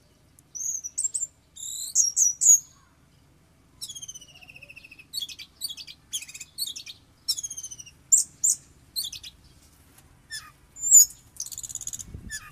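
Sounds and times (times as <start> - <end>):
Oriental magpie-robin song with whistled notes, descending trill and chattering: 0.0 - 12.5.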